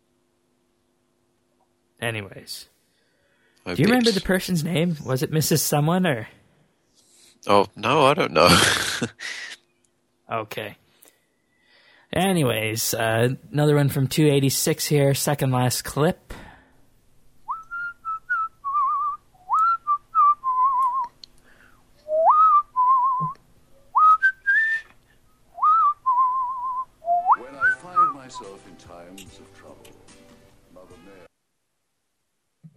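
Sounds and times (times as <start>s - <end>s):
speech: 2.0s - 2.7s, 3.6s - 6.4s, 7.4s - 9.4s, 10.3s - 10.8s, 12.2s - 16.4s
rough voice-like sound: 7.5s - 9.5s
person whistling a song melody: 17.5s - 21.1s, 22.1s - 23.4s, 24.0s - 24.9s, 25.6s - 28.6s.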